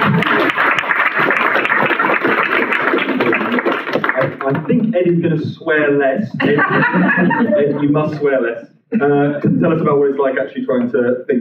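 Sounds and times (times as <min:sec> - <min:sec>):
room full of people applauding: 0:00.0 - 0:04.7
speech: 0:04.9 - 0:11.3
laughter: 0:06.3 - 0:08.4.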